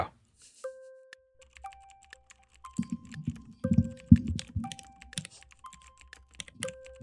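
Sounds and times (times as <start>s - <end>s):
rapid clattery typing on a mechanical keyboard: 1.4s - 7.0s.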